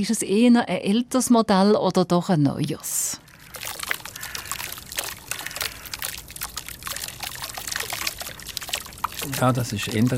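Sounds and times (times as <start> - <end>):
speech: 0.0 - 3.3, 9.2 - 10.1
water splashing in a modern fountain: 3.2 - 10.1.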